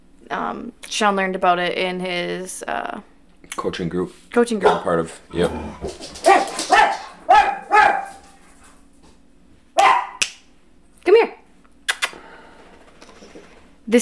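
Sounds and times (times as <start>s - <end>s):
speech: 0.3s - 6.8s
dogs barking: 4.6s - 8.8s, 9.8s - 10.2s.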